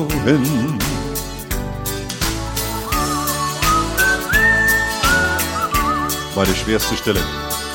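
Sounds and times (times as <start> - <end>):
speech: 0.0 - 0.8, 6.4 - 7.5
loud rhythmic band backing: 2.3 - 7.4
person whistling a clear wavering melody: 2.7 - 6.8.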